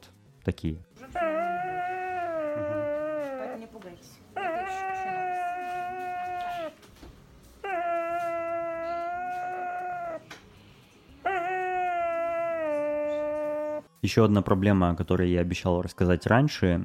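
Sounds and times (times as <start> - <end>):
speech: 0.4 - 0.9, 3.8 - 5.1, 14.1 - 16.8
dog whimpering in its sleep after anesthesia: 1.0 - 6.9, 7.6 - 10.3, 11.2 - 13.9.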